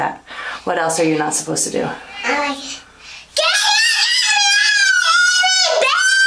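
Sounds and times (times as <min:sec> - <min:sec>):
speech: 0:00.0 - 0:02.8
child screaming at a high wavering pitch: 0:03.4 - 0:06.2.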